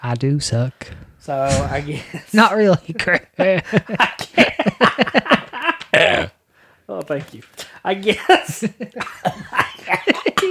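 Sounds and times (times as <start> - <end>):
speech: 0.0 - 5.1, 7.1 - 9.4
laughter: 1.8 - 6.3, 8.0 - 10.4
harsh coughing fit: 3.9 - 6.4, 7.6 - 10.4.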